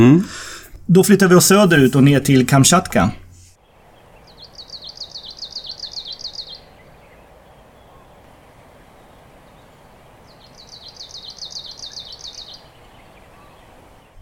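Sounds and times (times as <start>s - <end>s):
speech: 0.0s - 3.2s
steady low hiss: 0.0s - 14.1s
bird in Kamchatka singing pulsing stuttering notes: 3.6s - 14.1s.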